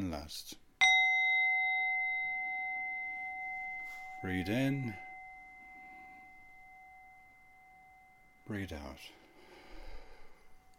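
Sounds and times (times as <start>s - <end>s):
speech: 0.1s - 0.6s, 4.2s - 5.0s, 8.5s - 9.2s
single bell ringing during a breathing meditation: 0.8s - 9.1s.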